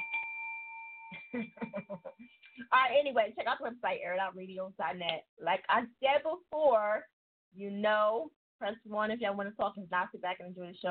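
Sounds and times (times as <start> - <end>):
doorbell ringing with a two-tone chime: 0.0 - 1.6
speech: 1.3 - 10.8.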